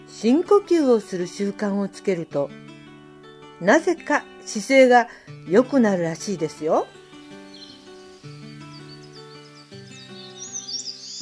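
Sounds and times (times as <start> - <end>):
soft sustained gentle music: 0.0 - 11.2
speech: 0.2 - 2.7, 3.6 - 7.0
birds chirping and twittering: 6.1 - 11.2.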